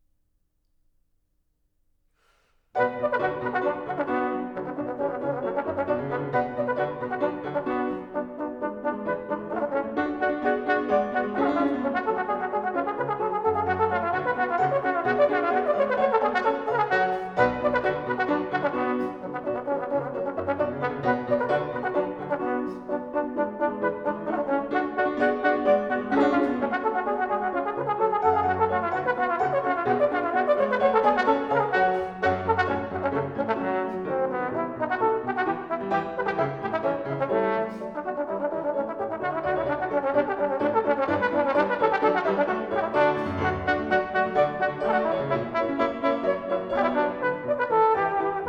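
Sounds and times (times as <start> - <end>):
trombone playing a classical suite arrangement: 2.8 - 48.4.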